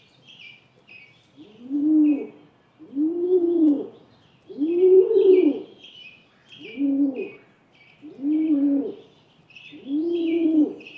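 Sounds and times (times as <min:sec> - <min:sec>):
small birds twittering faintly: 0:00.0 - 0:10.9
rock pigeon giving deep rolling coos: 0:01.4 - 0:05.8, 0:06.6 - 0:07.4, 0:08.1 - 0:09.0, 0:09.8 - 0:10.9.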